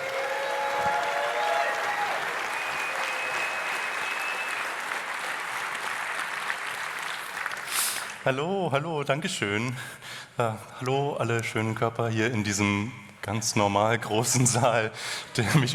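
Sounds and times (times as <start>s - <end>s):
large indoor audience applause in a hall: 0.0s - 8.2s
speech: 8.2s - 15.7s.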